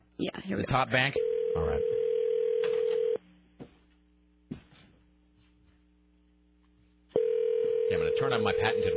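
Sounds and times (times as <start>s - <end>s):
speech: 0.2s - 2.0s, 8.2s - 8.9s
telephone line ring tone during a call: 1.2s - 3.2s, 7.2s - 8.9s.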